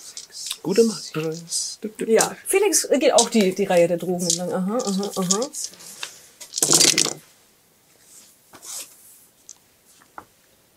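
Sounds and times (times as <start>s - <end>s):
handful of dice rattling as they are rolled in a game: 0.1s - 0.6s, 1.2s - 1.6s, 2.2s - 2.4s, 3.2s - 5.8s, 6.4s - 7.2s
speech: 0.6s - 6.0s, 6.7s - 7.2s.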